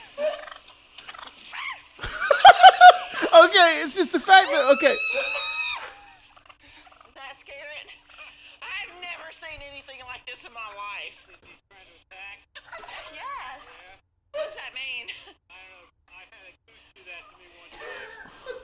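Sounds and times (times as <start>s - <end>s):
turkey gobbling: 0.0s - 1.9s
laughter: 2.0s - 6.2s, 17.7s - 18.6s
speech: 3.7s - 5.5s.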